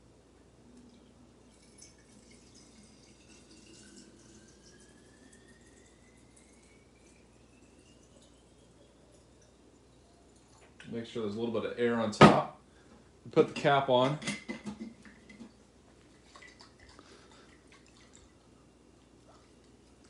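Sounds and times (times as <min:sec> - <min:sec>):
water pouring into a coffee maker reservoir: 0:00.6 - 0:10.7, 0:16.1 - 0:20.0
speech: 0:10.9 - 0:12.6, 0:13.3 - 0:14.4.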